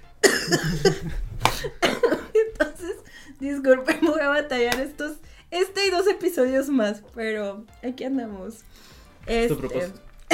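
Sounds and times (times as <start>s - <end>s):
smoker's harsh raspy coughing fit: 0.2s - 3.2s
speech: 0.5s - 1.8s, 3.4s - 10.1s.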